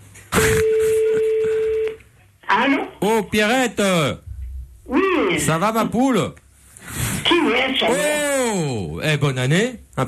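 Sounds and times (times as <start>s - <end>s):
telephone tone while a call to Canada is being placed: 0.4s - 2.0s
speech: 2.6s - 4.2s, 4.9s - 10.0s.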